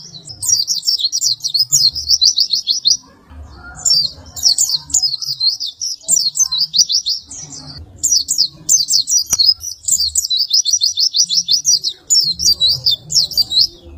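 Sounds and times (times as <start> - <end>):
white-eye warbling chatter: 0.0 - 13.9.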